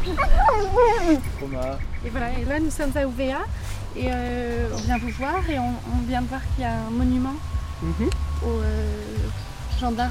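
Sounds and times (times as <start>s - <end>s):
dog giving a drawn-out wavering whine or howl: 0.0s - 1.2s
faint outdoor background: 0.0s - 10.0s
speech: 0.1s - 10.0s.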